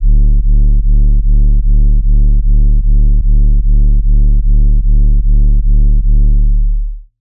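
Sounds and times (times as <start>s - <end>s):
sub bass: 0.0s - 7.1s.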